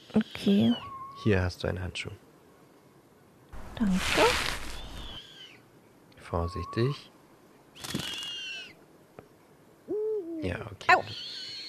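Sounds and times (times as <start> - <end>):
owl screeching: 0.0 - 1.3, 4.2 - 5.7, 6.3 - 7.1, 7.8 - 8.8, 10.9 - 11.6
owl wavering hoot-like note: 0.0 - 1.3, 3.8 - 5.6, 6.3 - 7.1, 7.8 - 8.8, 9.9 - 11.6
speech: 0.1 - 2.2, 3.8 - 4.6, 6.3 - 7.1, 10.4 - 11.2.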